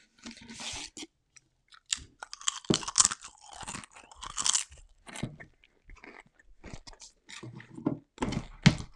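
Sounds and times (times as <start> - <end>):
crunching and chewing Pringles potato crisps: 1.7 - 7.8.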